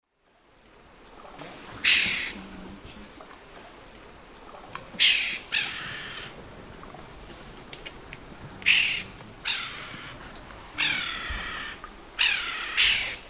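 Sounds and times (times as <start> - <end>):
Donacobius atricapilla calls in the Eastern Lowlands of South America: 1.8 - 2.4, 5.0 - 6.4, 8.6 - 13.2.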